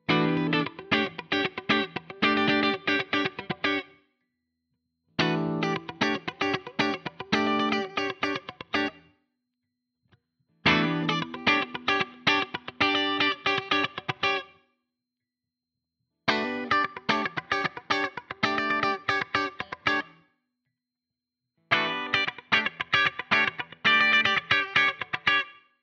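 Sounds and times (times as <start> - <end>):
clean funk guitar: 0.0 - 3.9, 5.2 - 9.0, 10.6 - 14.6, 16.3 - 20.2, 21.7 - 25.6.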